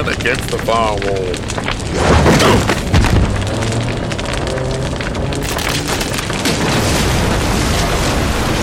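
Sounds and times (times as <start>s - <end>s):
heavy sustained roaring rumble with crackling texture: 0.0s - 8.6s
speech: 0.2s - 2.8s
loud deafening explosion: 1.8s - 8.6s.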